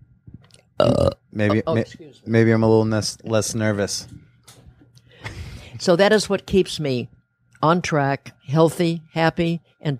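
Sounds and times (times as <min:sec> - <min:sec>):
loud drawn-out belch: 0:00.8 - 0:01.6
speech: 0:00.8 - 0:04.2, 0:05.8 - 0:09.9.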